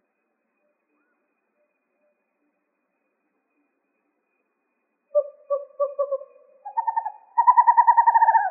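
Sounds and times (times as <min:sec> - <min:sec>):
western screech owl rapid pulsed trill in Arizona: 0:00.0 - 0:08.4
western screech owl hooting in Arizona: 0:05.1 - 0:08.4.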